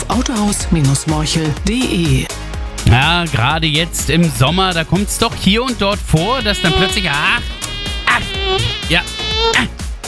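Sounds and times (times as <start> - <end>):
speech: 0.2 - 9.8
mosquito whine: 6.1 - 9.7.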